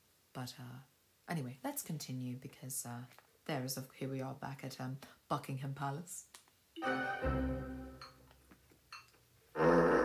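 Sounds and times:
speech: 0:00.4 - 0:08.1
loud farts: 0:09.6 - 0:10.0.

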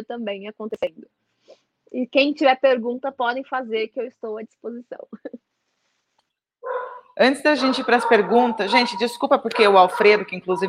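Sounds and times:
speech: 0:00.0 - 0:05.4, 0:06.6 - 0:10.6
dog barking: 0:06.6 - 0:10.6.

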